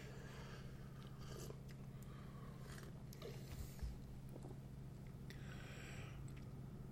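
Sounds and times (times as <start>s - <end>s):
low steady hum: 0.0s - 6.8s
person sipping herbal tea: 0.9s - 4.6s.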